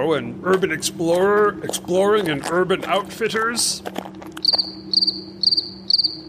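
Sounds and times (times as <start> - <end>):
speech: 0.0 - 5.4
low steady hum: 0.0 - 6.2
crickets chirping: 4.3 - 6.2.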